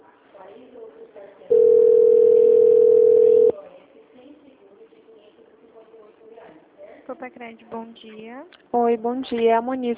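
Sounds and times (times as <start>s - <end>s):
telephone transfer tone on a company's phone line: 1.5s - 3.5s
speech: 7.2s - 9.9s.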